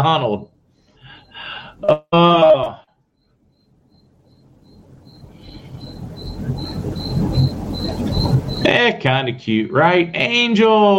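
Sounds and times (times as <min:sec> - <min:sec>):
speech: 0:00.0 - 0:00.6, 0:01.4 - 0:02.8, 0:08.7 - 0:10.9
coquí frogs calling with short high chirps: 0:03.2 - 0:08.8
low rumbling background: 0:03.5 - 0:08.7.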